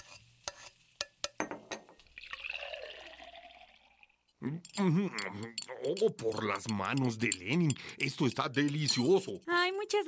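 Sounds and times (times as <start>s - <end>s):
dishes and utensils clinking as a plate of enchiladas is served: 0.0s - 2.0s, 4.6s - 9.5s
agua de Jamaica pouring into a glass: 1.9s - 4.4s
speech: 4.4s - 10.0s.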